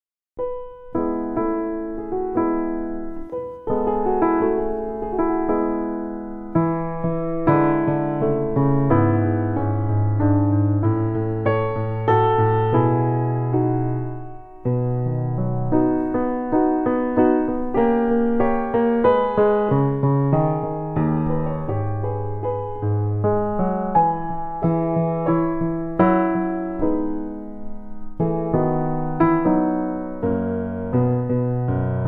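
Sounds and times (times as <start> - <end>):
Lutheal piano: 0.4 - 32.0.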